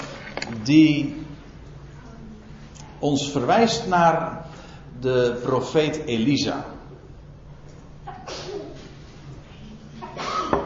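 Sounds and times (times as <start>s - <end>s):
speech: 0.6s - 1.3s, 3.0s - 6.7s
sneeze: 8.1s - 8.9s, 10.0s - 10.6s.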